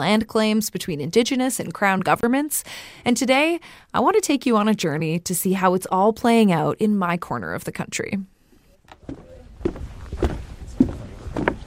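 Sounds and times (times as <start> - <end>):
speech: 0.0 - 8.3
footsteps of two people on forest trail earth and debris: 9.0 - 11.6.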